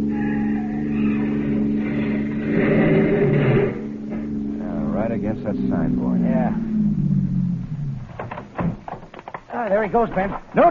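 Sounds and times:
police car engines rumbling and accelerating: 0.0 - 8.2
speech: 5.5 - 7.0, 9.6 - 10.6.

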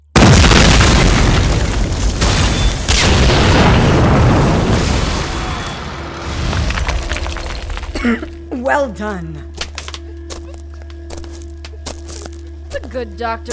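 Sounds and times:
explosion of blasting charges in a deliberate demolition: 0.1 - 7.9
speech: 8.0 - 9.5, 12.8 - 13.5.

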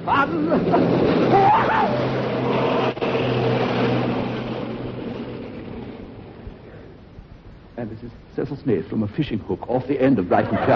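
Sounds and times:
speech: 0.0 - 2.6, 7.8 - 10.7
towing motorboat engine roaring: 0.0 - 7.1
laughter: 10.3 - 10.7.

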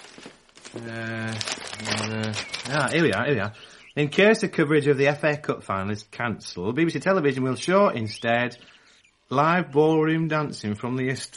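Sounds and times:
newspaper pages rustling and crinkling: 0.0 - 3.8
speech: 0.7 - 11.3
person humming or murmuring drawn-out tones: 0.8 - 2.8.

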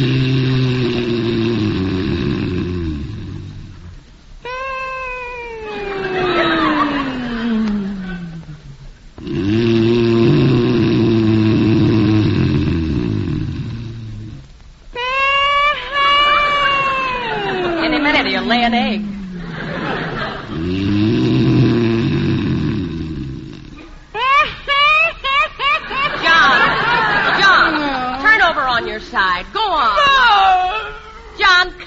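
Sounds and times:
man snoring loudly in bed with rattling rumble and swooping whistle: 0.0 - 3.9, 9.2 - 14.5, 20.4 - 23.8
laughter: 4.5 - 8.6, 15.0 - 20.7, 24.2 - 31.5.

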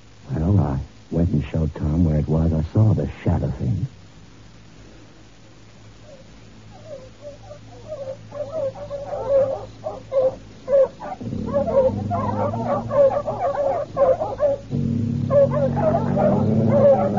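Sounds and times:
low steady rumble: 0.0 - 17.1
speech: 1.4 - 4.0
dogs barking and yipping: 6.0 - 17.1.

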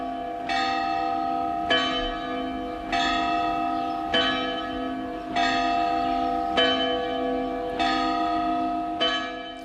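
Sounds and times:
church bells ringing a festive peal in Sant Eugeni Mallorca: 0.0 - 9.6.

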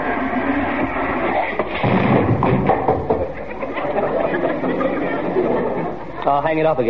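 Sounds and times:
noise: 0.0 - 6.8
door slamming shut: 1.7 - 3.2
laughter: 3.2 - 6.2
speech: 6.3 - 6.8.

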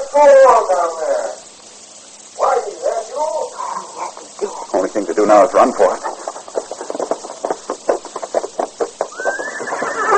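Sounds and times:
speech: 0.2 - 1.4, 4.9 - 6.1
horse hooves clopping: 5.4 - 10.1
horse whinnying: 9.1 - 10.1.

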